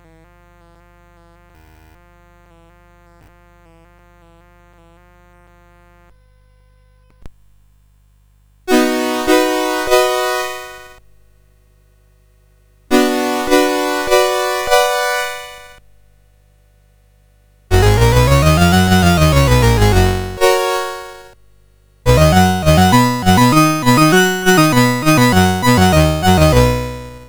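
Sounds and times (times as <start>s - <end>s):
CSG8580R5 sound chip playing basic scales and triads: 8.7s - 11.0s, 12.9s - 15.7s, 17.7s - 21.2s, 22.1s - 27.2s.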